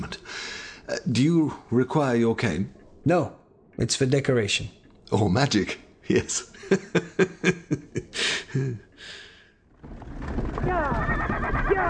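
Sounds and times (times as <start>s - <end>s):
speech: 1.0s - 7.8s
laughter: 6.4s - 8.8s
horse whinnying: 10.6s - 11.8s.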